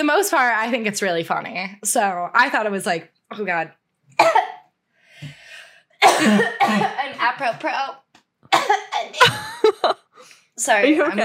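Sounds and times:
speech: 0.0 - 4.5, 6.2 - 8.0, 8.6 - 10.0, 10.6 - 11.2
person coughing with a lingering cough and very dry throat: 4.2 - 4.6, 6.0 - 7.2, 8.6 - 9.7
laughter: 9.2 - 10.1.

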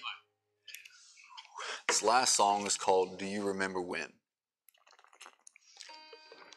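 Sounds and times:
speech: 2.0 - 4.2
bubbly pops: 4.6 - 5.9
wet gurgling: 4.7 - 5.9.

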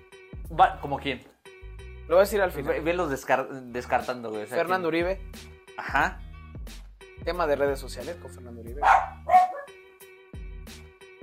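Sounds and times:
speech: 0.5 - 1.3, 2.1 - 9.0
several dogs barking: 8.8 - 9.8.

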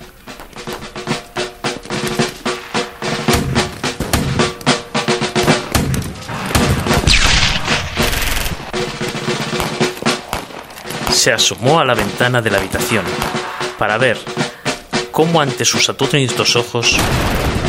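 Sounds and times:
rapid rifle gunfire from men in Confederate and Union uniforms: 1.9 - 13.7
heavy cannon blasts: 2.1 - 14.6, 16.9 - 17.6
speech: 11.2 - 14.5, 15.2 - 17.6.

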